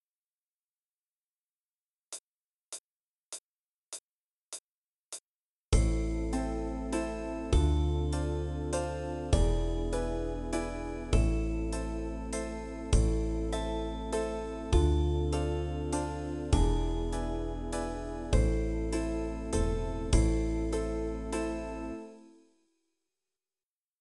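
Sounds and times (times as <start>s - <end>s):
waltz with Am cadence and Dm7 chords: 5.8s - 22.2s.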